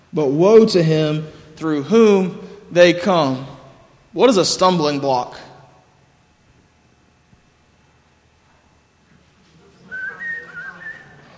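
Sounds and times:
faint low hum: 0.0 - 11.3
speech: 0.1 - 3.5, 4.1 - 5.5
person whistling a short tune: 9.9 - 11.3.

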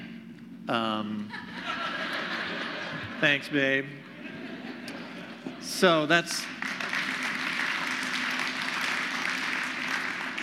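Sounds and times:
speech: 0.7 - 1.8, 3.2 - 4.1, 5.6 - 6.8
laughter: 1.1 - 6.2
one person clapping hands: 6.4 - 10.4.

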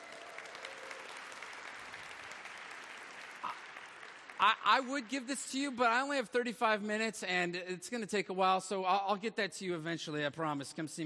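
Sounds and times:
crowd clapping: 0.0 - 6.2
speech: 4.4 - 11.0.

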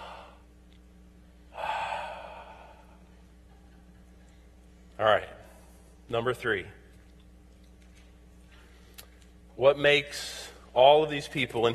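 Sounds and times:
church congregation taking a big deep breath together: 0.0 - 0.4, 1.5 - 3.1
faint steady hiss: 0.0 - 11.7
speech: 5.0 - 5.4, 6.1 - 6.8, 9.6 - 11.7.

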